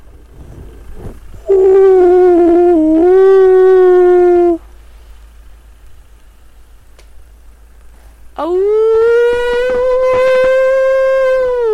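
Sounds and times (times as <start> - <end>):
man imitating a low wolf howl: 1.4 - 4.6, 8.4 - 11.7.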